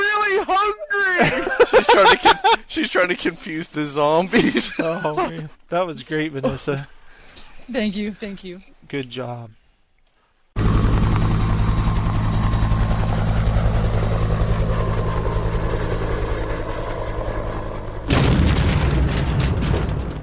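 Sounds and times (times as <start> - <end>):
laughter: 0.4 - 3.2, 4.1 - 6.9
speech: 0.5 - 7.0, 7.7 - 9.6
rescue helicopter engine droning: 1.2 - 5.1, 10.6 - 18.2
rescue helicopter crashing: 18.1 - 20.2.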